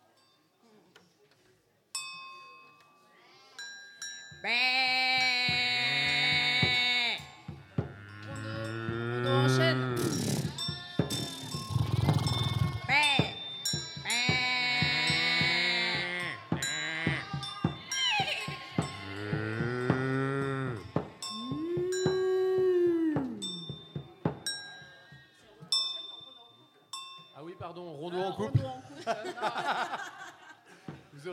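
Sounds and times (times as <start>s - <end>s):
speech: 4.4s - 5.0s
ewes bleating in long wavering calls: 4.5s - 13.0s, 14.1s - 22.2s
laughter: 17.0s - 18.9s, 28.3s - 31.2s
brief voice-like sounds: 21.4s - 23.7s.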